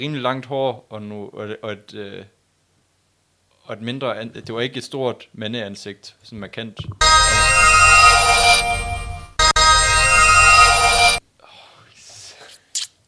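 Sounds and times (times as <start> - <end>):
speech: 0.0 - 2.4, 3.7 - 7.7
bright shimmering magic sound effect: 7.0 - 11.2
faint breathy whisper-like noises: 11.4 - 12.8.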